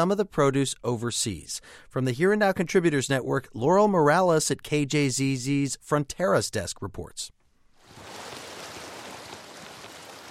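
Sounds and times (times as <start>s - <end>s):
speech: 0.0s - 7.4s
Colorado River irrigation water flowing across a farm field in southwestern Arizona: 7.8s - 10.2s.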